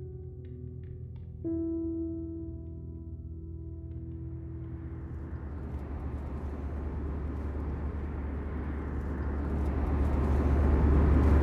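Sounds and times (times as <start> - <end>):
airplane cabin engine drone in flight: 3.0 - 11.4.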